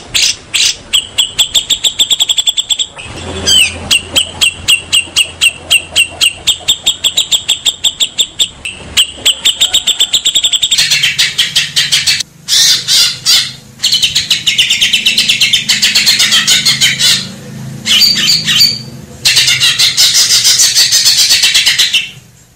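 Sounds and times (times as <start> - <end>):
Grey-cheeked bulbul training song: 0.0 - 22.4.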